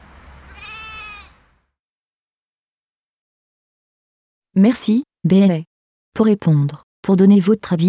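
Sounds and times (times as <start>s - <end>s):
sheep bleating: 0.5s - 1.4s
speech: 4.6s - 7.8s.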